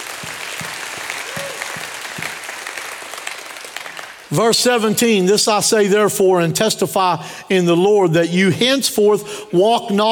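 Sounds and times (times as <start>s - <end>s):
audience applauding: 0.0s - 4.3s
rhythmic claps: 0.0s - 4.4s
speech: 4.3s - 10.1s.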